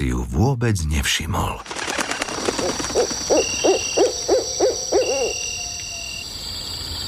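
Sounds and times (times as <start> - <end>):
speech: 0.2 - 2.0
faint high insect-like hum at night: 1.8 - 7.0
owl hooting in a tall pine at night: 2.3 - 6.2.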